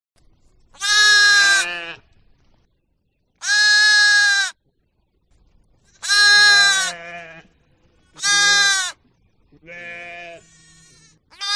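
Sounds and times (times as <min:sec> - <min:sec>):
sheep: 0:00.7 - 0:02.1, 0:03.4 - 0:04.6, 0:05.9 - 0:07.5, 0:08.1 - 0:09.0, 0:09.6 - 0:11.5.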